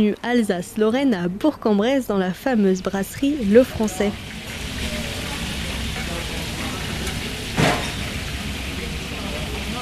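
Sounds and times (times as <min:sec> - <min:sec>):
speech: 0:00.0 - 0:04.4
Bresse chicken simmering in pans on a stove in a brasserie kitchen: 0:03.3 - 0:09.8.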